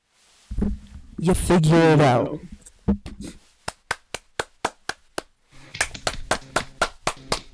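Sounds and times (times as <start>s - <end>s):
speech: 0.6s - 3.4s
hand claps: 3.6s - 7.5s.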